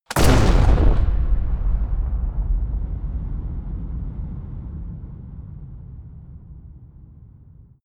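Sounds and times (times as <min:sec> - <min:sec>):
shotgun fire with huge reverb: 0:00.1 - 0:06.0.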